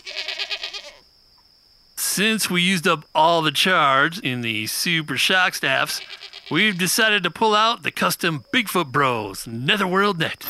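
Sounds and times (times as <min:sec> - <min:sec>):
goat bleating in a pen: 0:00.0 - 0:01.0, 0:05.7 - 0:07.0
speech: 0:02.2 - 0:10.4.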